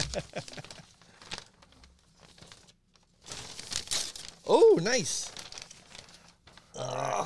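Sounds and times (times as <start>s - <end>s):
gift wrapping paper crinkling and tearing as a present is unwrapped: 0.0s - 7.2s
speech: 0.2s - 0.6s, 4.5s - 5.4s.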